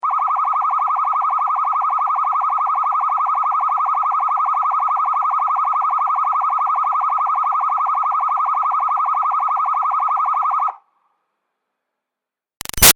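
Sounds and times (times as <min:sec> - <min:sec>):
police siren blipping steady medium far: 0:00.0 - 0:10.8.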